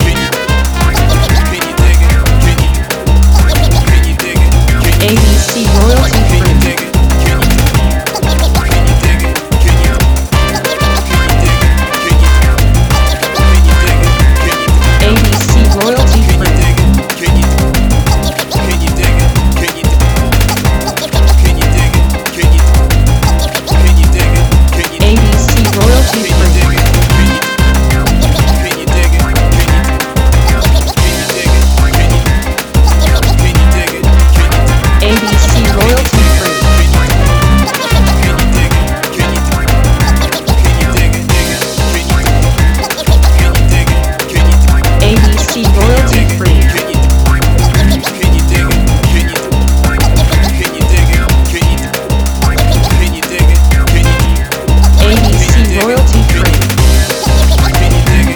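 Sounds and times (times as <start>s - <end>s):
bossa music loop: 0.0s - 58.3s.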